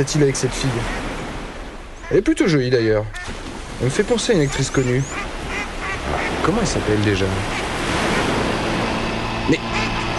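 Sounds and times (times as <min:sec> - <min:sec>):
speech: 0:00.0 - 0:01.1, 0:02.1 - 0:05.3, 0:06.4 - 0:07.6
ocean surf at an island: 0:00.0 - 0:02.0, 0:03.1 - 0:10.1
wind at an island: 0:00.0 - 0:10.1
engine drone of an approaching boat: 0:05.7 - 0:10.1.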